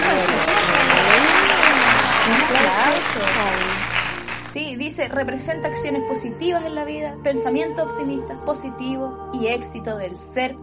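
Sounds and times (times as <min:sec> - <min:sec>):
crowd applause: 0:00.0 - 0:04.6
speech: 0:04.5 - 0:10.6.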